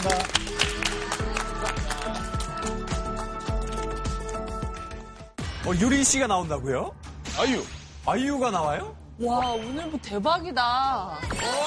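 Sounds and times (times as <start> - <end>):
speech: 0.0 - 0.4, 5.7 - 11.6
studio audience applauding after a lecture: 0.0 - 2.6
upbeat music with a regular thumping beat: 0.0 - 7.6.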